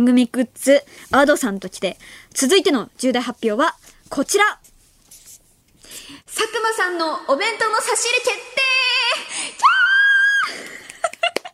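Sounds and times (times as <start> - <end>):
speech: 0.0 - 4.7, 5.9 - 8.8
loud sustained high-pitched scream with short sharp shrieks: 9.6 - 10.5.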